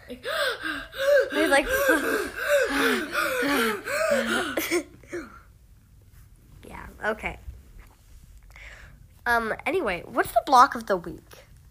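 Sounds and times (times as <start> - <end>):
person imitating heavy frightened breathing: 0.0 - 5.3
speech: 0.1 - 4.9, 7.0 - 7.4, 9.3 - 11.3.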